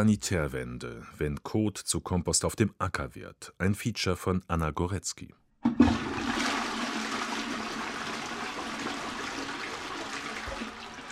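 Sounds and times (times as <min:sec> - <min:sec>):
speech: 0:00.0 - 0:05.9
toilet flushing with rushing water: 0:05.6 - 0:11.1.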